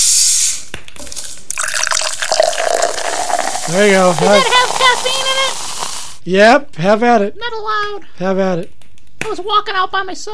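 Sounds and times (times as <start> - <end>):
drink being poured: 1.0 - 6.2
speech: 3.7 - 5.3, 6.2 - 10.3.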